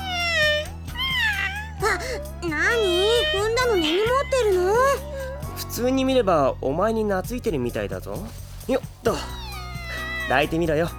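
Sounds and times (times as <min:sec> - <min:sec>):
cat meowing: 0:00.0 - 0:05.8, 0:08.6 - 0:10.9
speech: 0:02.0 - 0:04.8, 0:05.8 - 0:09.4, 0:10.3 - 0:10.9.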